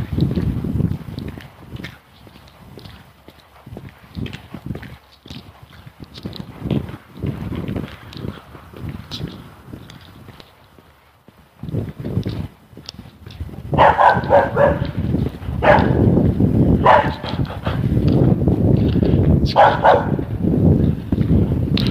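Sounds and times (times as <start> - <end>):
dog's paws running across a yard: 0.0 - 21.8
dog barking at a fence: 13.8 - 15.0, 15.6 - 16.1, 16.8 - 17.5, 19.5 - 20.3.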